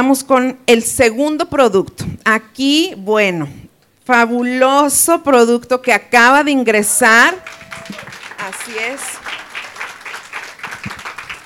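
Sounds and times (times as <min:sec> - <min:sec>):
speech: 0:00.0 - 0:09.4
applause during a product presentation: 0:07.0 - 0:11.4.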